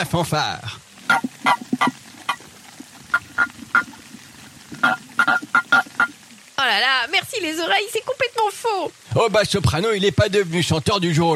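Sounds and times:
speech: 0.0s - 1.3s, 6.7s - 11.3s
pond frogs and toads croaking together: 0.8s - 7.8s.

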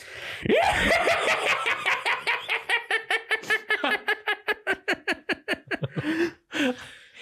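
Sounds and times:
speech: 0.4s - 1.4s
man imitating a maniacal horror-villain laugh: 0.5s - 6.3s
man's breathy drawn-out gasps: 5.9s - 7.2s.

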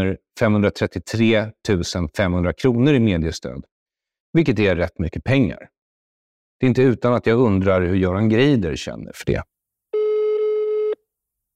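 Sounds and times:
speech: 0.0s - 3.7s, 4.3s - 5.8s, 6.6s - 9.5s
electronic telephone voicemail tone: 10.0s - 11.0s.

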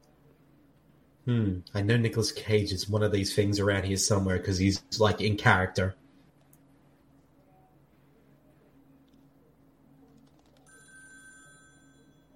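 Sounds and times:
steady low hum: 0.0s - 12.3s
speech: 1.3s - 6.0s
telephone ringing with an electronic trill: 10.6s - 12.3s.

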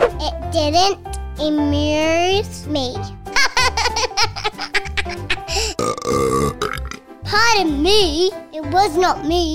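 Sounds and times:
speech: 0.2s - 3.2s, 7.3s - 9.5s
giggly laugh-like sounds: 3.3s - 5.8s
loud croaky burps: 5.5s - 7.0s.

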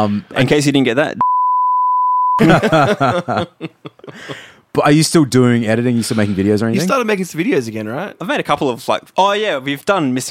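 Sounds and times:
speech: 0.0s - 1.2s, 2.4s - 10.2s
censor beep tone: 1.2s - 2.4s
rhythmic laughter: 2.4s - 4.4s.

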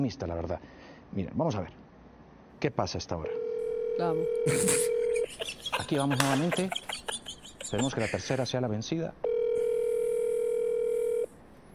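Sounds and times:
speech: 0.0s - 1.8s, 2.6s - 7.1s, 7.7s - 9.2s
telephone ringback tone of an outgoing call: 3.3s - 5.3s, 9.2s - 11.3s
laughter: 4.5s - 8.6s.

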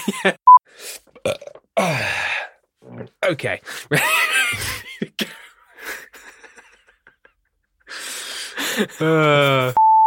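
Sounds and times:
speech: 0.0s - 1.5s, 3.3s - 4.7s, 9.0s - 9.8s
deliberate loud belch made on request: 1.2s - 2.0s.

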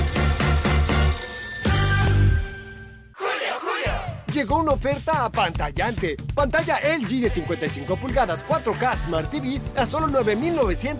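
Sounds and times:
telephone ringing: 0.0s - 2.9s
speech: 4.4s - 10.9s.

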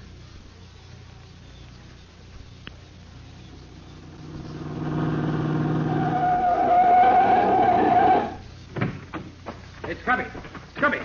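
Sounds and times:
car engine roaring: 3.2s - 8.5s
car tires squealing: 4.0s - 8.4s
dull knocks: 8.7s - 10.9s.

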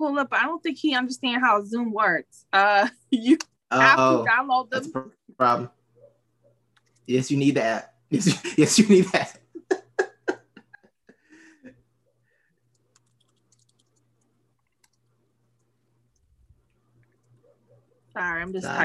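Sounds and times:
speech: 0.0s - 5.8s, 7.1s - 9.8s, 18.2s - 18.8s
laughter: 8.2s - 10.9s
typing on a keyboard: 12.7s - 16.3s.

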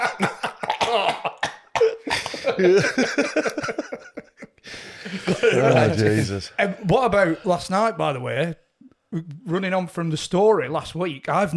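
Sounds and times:
laughter: 0.0s - 6.5s
person clearing throat: 0.6s - 3.0s
speech: 0.9s - 1.4s, 2.6s - 4.1s, 5.3s - 11.5s.

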